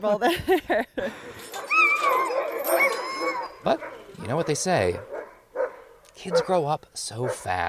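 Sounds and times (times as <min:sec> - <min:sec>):
speech: 0:00.0 - 0:02.2, 0:03.6 - 0:05.1, 0:06.2 - 0:07.6
sled dog puppy yipping and whimpering: 0:01.6 - 0:04.2.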